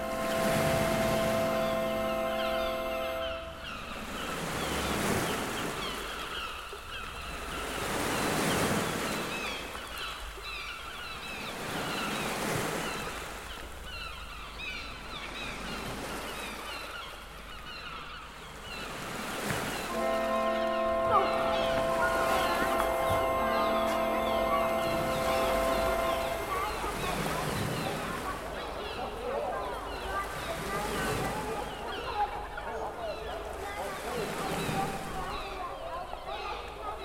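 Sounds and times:
low horn-like tone: 0:00.0 - 0:04.2, 0:19.9 - 0:28.3
honking gull calls: 0:00.0 - 0:06.0, 0:19.7 - 0:37.0
sea waves breaking on a beach: 0:00.0 - 0:37.0.

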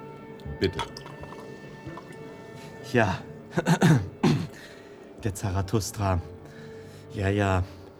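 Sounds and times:
speech: 0:00.6 - 0:01.1, 0:02.9 - 0:04.1, 0:05.2 - 0:06.3, 0:07.1 - 0:07.8
water pouring into a glass: 0:00.6 - 0:02.3.

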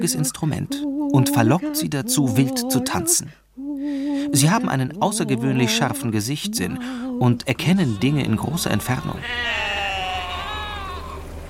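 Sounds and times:
speech: 0:00.0 - 0:09.8
low rumble: 0:00.0 - 0:11.4
sheep bleating: 0:07.6 - 0:11.2.

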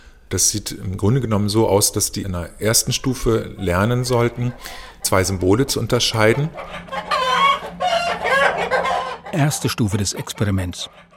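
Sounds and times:
speech: 0:00.3 - 0:07.1, 0:09.3 - 0:11.1
several chickens clucking and cackling: 0:03.0 - 0:11.1.

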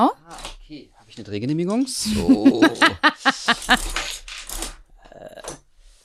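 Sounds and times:
speech: 0:00.0 - 0:04.2
laughter: 0:01.2 - 0:03.8
short vocal bursts: 0:01.9 - 0:03.8.

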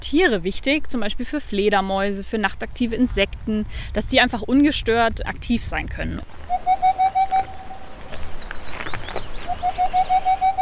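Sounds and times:
speech: 0:00.1 - 0:06.9
boreal owl song of hollow hoots: 0:06.4 - 0:08.2, 0:09.2 - 0:10.6
soft rustling noise: 0:07.3 - 0:09.8.

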